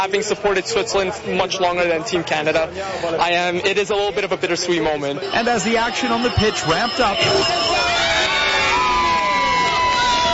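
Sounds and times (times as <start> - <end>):
speech: 0.0 - 7.9
soccer watch-party crowd cheering: 5.2 - 10.3
whistles: 5.3 - 10.3
whoops: 7.2 - 10.3.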